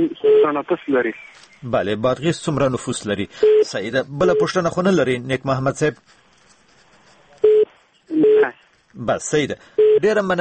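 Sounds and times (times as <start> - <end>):
busy tone beeps after a disconnected phone call: 0.0 - 0.6, 7.4 - 8.6, 9.8 - 10.1
speech: 0.0 - 6.2, 8.4 - 10.3.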